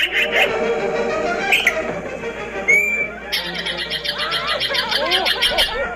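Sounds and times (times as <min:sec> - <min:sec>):
yellow-billed magpie harsh raspy chattering calls: 0:00.0 - 0:00.5, 0:03.3 - 0:05.8
other birds calling: 0:00.0 - 0:05.9
laughter: 0:02.8 - 0:05.9.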